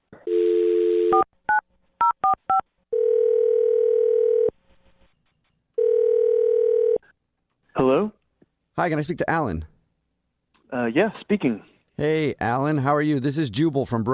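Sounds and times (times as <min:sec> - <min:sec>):
telephone dial tone: 0:00.2 - 0:01.3, 0:02.9 - 0:04.5, 0:05.8 - 0:07.0
long even telephone ringback tones: 0:02.2 - 0:04.5, 0:05.8 - 0:07.0
speech: 0:08.8 - 0:09.7, 0:10.7 - 0:14.1.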